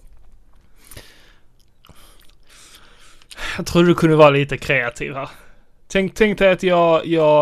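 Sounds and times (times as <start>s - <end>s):
wet chewing of candy with crunchy bites: 1.6s - 2.5s
speech: 3.6s - 7.4s.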